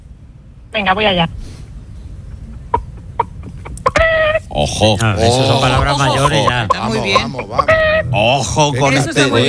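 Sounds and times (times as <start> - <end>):
speech: 0.7 - 1.4, 4.6 - 9.4
person imitating a hen clucking and squawking: 2.3 - 4.7, 5.3 - 8.2.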